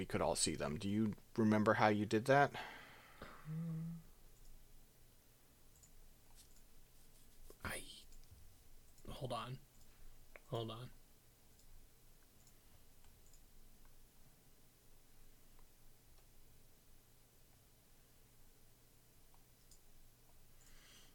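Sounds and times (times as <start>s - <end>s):
speech: 0.0s - 2.8s, 3.5s - 4.0s, 9.2s - 9.6s, 10.5s - 11.0s
steady hiss of noise: 0.0s - 21.1s
computer mouse clicks including right-clicks: 5.7s - 6.7s, 11.5s - 14.0s, 19.3s - 21.1s.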